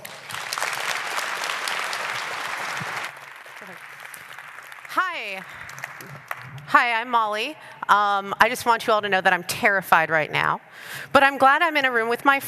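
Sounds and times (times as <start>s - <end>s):
room full of people applauding: 0.0s - 6.6s
speech: 5.2s - 12.4s.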